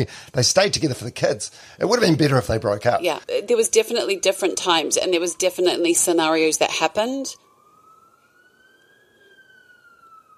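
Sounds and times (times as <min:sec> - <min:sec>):
speech: 0:00.0 - 0:07.4
steady noise: 0:00.0 - 0:10.3
emergency vehicle siren wailing outside in Auckland: 0:03.2 - 0:10.3.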